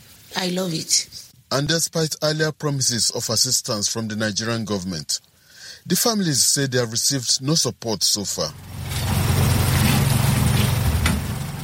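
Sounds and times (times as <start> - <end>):
speech: 0.3 - 9.1
water tanker truck engine pumping water into a tank outside an apartment in a Nigerian town: 8.4 - 11.6.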